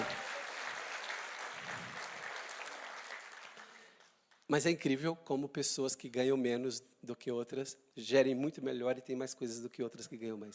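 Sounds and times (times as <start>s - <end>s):
crowd applauding steadily in dense applause: 0.0s - 4.2s
speech: 4.5s - 10.5s.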